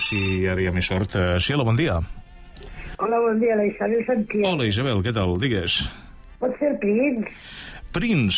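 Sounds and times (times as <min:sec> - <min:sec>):
telephone ringing for an incoming call: 0:00.0 - 0:00.7
speech: 0:00.1 - 0:08.3.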